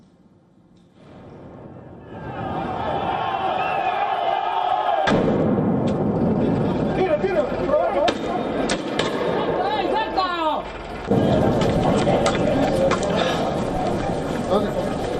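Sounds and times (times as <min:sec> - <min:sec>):
sharp explosions echoing over a street protest in La Paz Bolivia: 0:01.0 - 0:04.1, 0:05.0 - 0:09.9, 0:10.9 - 0:13.9
crowd of protesters shouting and roaring in a street in La Paz Bolivia: 0:02.0 - 0:05.2, 0:07.4 - 0:15.1.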